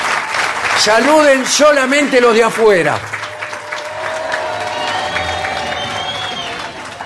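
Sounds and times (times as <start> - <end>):
large outdoor crowd applauding: 0.0 - 7.0
speech: 0.8 - 3.2
people shouting in an outdoor crowd: 3.2 - 6.9
people whistling in an outdoor crowd: 3.3 - 7.0.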